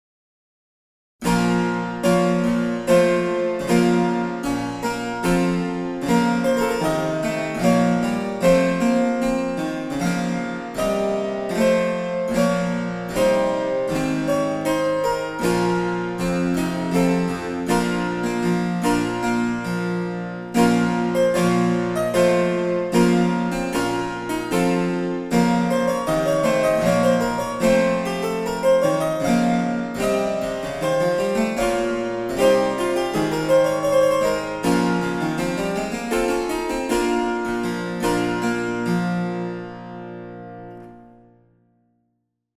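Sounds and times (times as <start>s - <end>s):
German harpsichord with two eight-foot registers: 1.2s - 41.2s.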